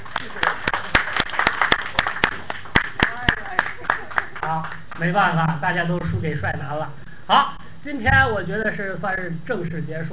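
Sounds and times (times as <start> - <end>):
small group clapping: 0.0 - 5.2
speech: 5.0 - 10.1.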